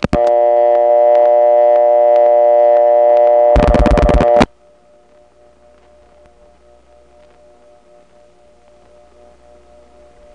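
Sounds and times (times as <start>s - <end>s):
telephone exchange selector tone awaiting dialed digit: 0.1s - 10.3s
sharp telephone exchange clicks: 3.2s - 4.5s.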